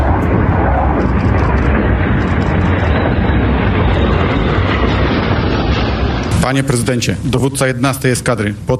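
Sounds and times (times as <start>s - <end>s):
F-35 fighter jets flying over: 0.0s - 8.7s
speech: 6.5s - 8.7s.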